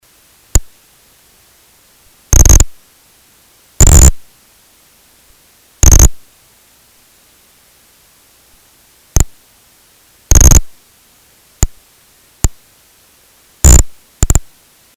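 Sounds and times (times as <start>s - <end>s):
vaquita sounds: 2.3s - 2.8s, 3.8s - 4.2s, 5.8s - 6.2s, 10.3s - 10.8s, 13.6s - 14.5s.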